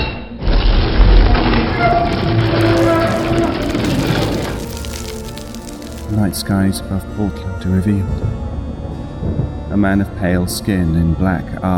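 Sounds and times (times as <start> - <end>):
concrete debris crumbling and falling as ceiling pulls back: 0.8 - 6.2
steady gritty grinding: 1.4 - 6.4
speech: 6.2 - 8.4, 9.8 - 11.7.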